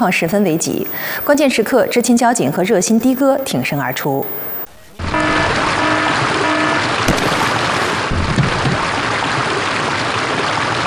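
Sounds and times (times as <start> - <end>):
speech: 0.0 - 4.6
floodwater rushing on a flooded road after a sudden rainstorm: 0.0 - 10.8
knocks: 8.1 - 8.8.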